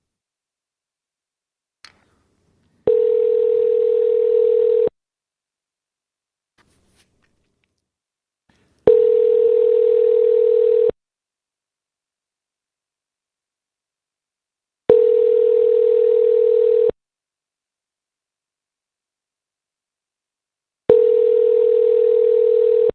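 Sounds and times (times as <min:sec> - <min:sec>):
telephone ringback tones while waiting for hotel front desk to answer: 0:02.9 - 0:04.9, 0:08.9 - 0:10.9, 0:14.9 - 0:16.9, 0:20.9 - 0:22.9.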